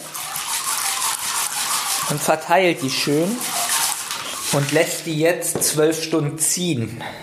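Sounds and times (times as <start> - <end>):
lentils tipped into water to soak: 0.0 - 5.2
speech: 2.1 - 3.6, 4.5 - 7.2.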